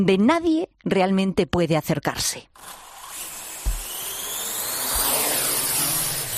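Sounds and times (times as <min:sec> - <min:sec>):
speech: 0:00.0 - 0:02.8
small drone rotors buzzing at volcano eruptive vents: 0:02.6 - 0:06.3.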